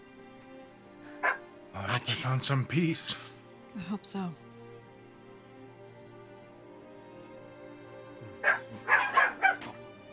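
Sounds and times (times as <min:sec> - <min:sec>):
several small corgis barking: 0:01.2 - 0:01.5, 0:08.3 - 0:09.8
speech: 0:02.0 - 0:04.4.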